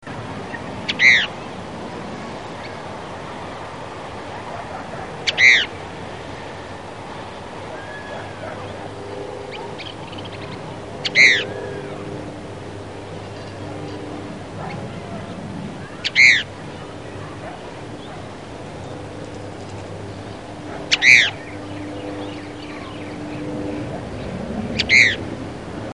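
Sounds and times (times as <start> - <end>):
Cassin's kingbird calling: 0.5 - 1.4, 5.2 - 5.8, 7.7 - 12.1, 14.6 - 19.2, 20.1 - 24.0, 24.7 - 25.3.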